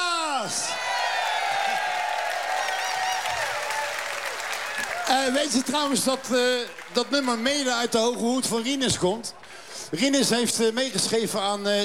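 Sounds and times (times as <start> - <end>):
people cheering: 0.0 - 8.2
crowd applauding: 0.5 - 8.4
speech: 5.1 - 11.8.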